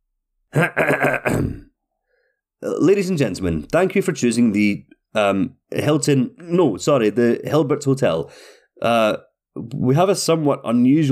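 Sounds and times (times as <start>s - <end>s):
speech: 0.5s - 1.2s, 2.7s - 11.1s
person clearing throat in rough guttural bursts: 0.5s - 1.8s.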